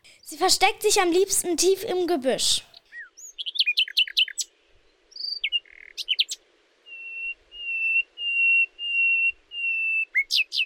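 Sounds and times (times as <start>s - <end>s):
speech: 0.3s - 2.7s
common nightingale singing: 2.6s - 10.6s.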